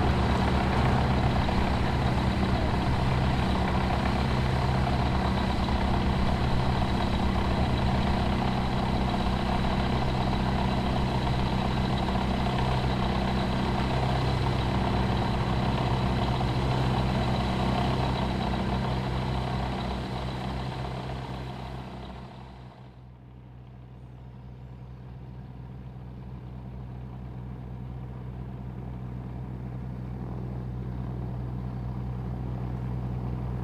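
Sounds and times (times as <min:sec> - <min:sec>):
light aircraft engine running at Archerfield Airport near Brisbane Australia: 0:00.0 - 0:33.6.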